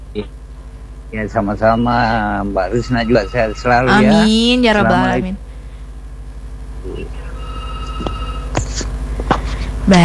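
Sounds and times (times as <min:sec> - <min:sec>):
low hum: 0:00.0 - 0:10.0
speech: 0:00.2 - 0:00.4, 0:01.1 - 0:05.4
telephone ringing with an incoming call: 0:02.8 - 0:04.4, 0:07.3 - 0:08.6.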